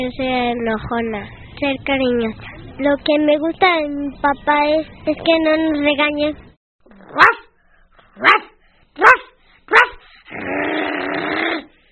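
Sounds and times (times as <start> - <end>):
speech: 0.0 - 6.5, 7.1 - 7.4, 8.2 - 9.1
dog barking: 7.0 - 7.6, 8.2 - 10.0
dog growling: 10.3 - 11.7.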